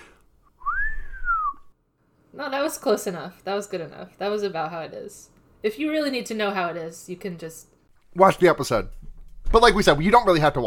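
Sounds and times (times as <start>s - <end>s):
person attempting a whistle: 0.6s - 1.7s
speech: 2.3s - 10.6s.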